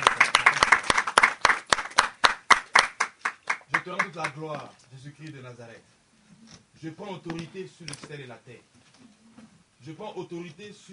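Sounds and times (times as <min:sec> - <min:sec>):
rhythmic hand clapping at a church worship service: 0:00.0 - 0:04.6
speech: 0:03.9 - 0:08.8, 0:09.8 - 0:10.9.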